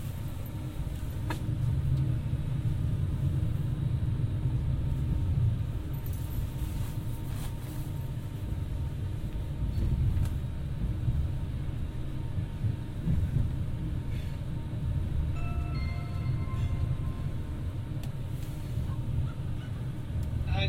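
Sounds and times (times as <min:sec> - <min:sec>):
passenger train arriving into London Euston rumbling, heard from on board: 0:00.0 - 0:20.6.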